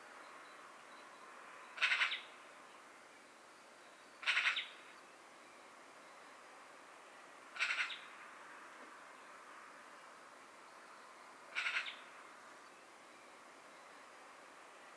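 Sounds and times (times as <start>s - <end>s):
Eurasian magpie Pica pica harsh chattering: 1.8s - 2.3s, 4.2s - 4.7s, 7.6s - 8.0s, 11.6s - 12.0s.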